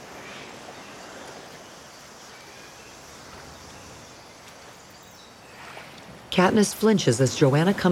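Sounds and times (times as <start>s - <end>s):
small waves lapping at a beach shoreline: 0.0s - 7.9s
speech: 6.4s - 7.9s.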